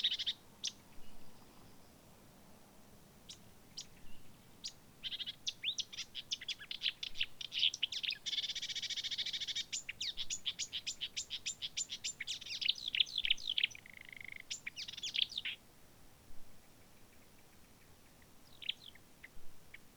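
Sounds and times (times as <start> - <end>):
marsh warbler giving high ticks and a varied song phrase: 0.0 - 0.8, 3.3 - 15.6.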